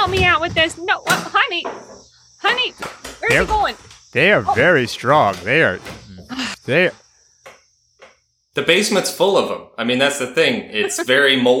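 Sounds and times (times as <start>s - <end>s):
speech: 0.0s - 7.0s, 8.6s - 11.5s
faint high-pitched cricket trill indoors: 0.0s - 11.5s
short wavering human vocal sounds: 4.2s - 7.0s.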